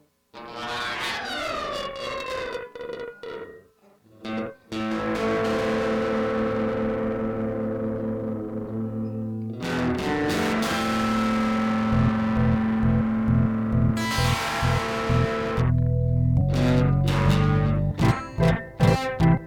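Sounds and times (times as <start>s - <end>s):
guitar playing a prelude: 0.0s - 19.4s
organ playing a prelude: 11.2s - 19.4s.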